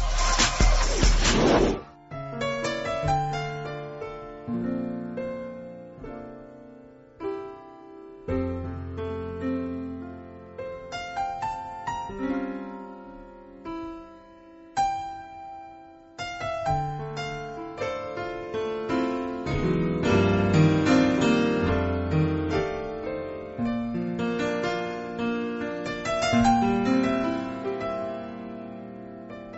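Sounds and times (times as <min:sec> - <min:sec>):
noisy crash: 0:00.0 - 0:02.0
instrumental music interlude played during a break: 0:00.0 - 0:29.5.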